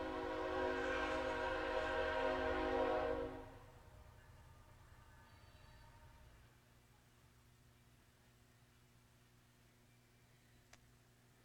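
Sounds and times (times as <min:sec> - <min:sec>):
train horn blaring: 0:00.0 - 0:04.0.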